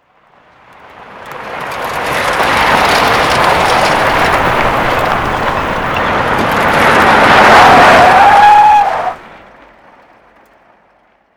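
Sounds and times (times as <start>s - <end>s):
jeep driving on dirt: 0.4s - 11.2s.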